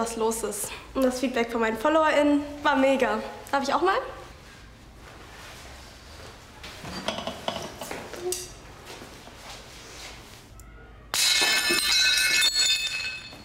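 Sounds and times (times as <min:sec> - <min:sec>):
speech: 0:00.0 - 0:04.2
dishes and glass clinking: 0:06.8 - 0:08.6, 0:11.2 - 0:13.4
glass or crockery smashing into shards: 0:11.1 - 0:13.4
bright tinkling glass fragments: 0:11.2 - 0:13.4.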